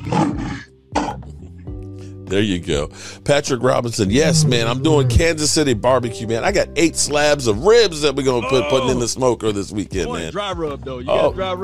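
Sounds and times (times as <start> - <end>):
lion roaring: 0.0 - 1.2, 4.0 - 5.6
speech: 2.3 - 11.6.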